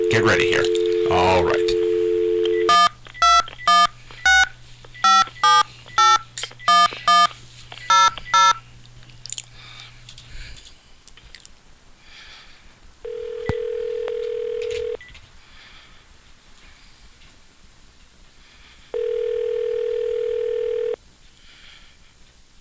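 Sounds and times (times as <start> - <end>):
touch-tone telephone keypad dialing beeps: 0.0 - 8.6, 13.1 - 15.1, 19.0 - 21.0
speech: 0.1 - 1.8.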